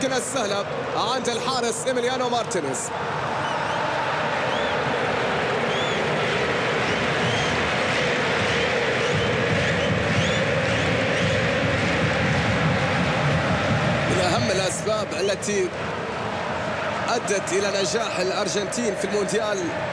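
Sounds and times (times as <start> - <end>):
speech: 0.0 - 3.6, 14.9 - 16.0, 17.2 - 19.9
roar of a large crowd of football fans in a stadium in Dallas: 0.0 - 19.9
football fans' whistles in a stadium: 5.7 - 6.0, 8.5 - 11.3.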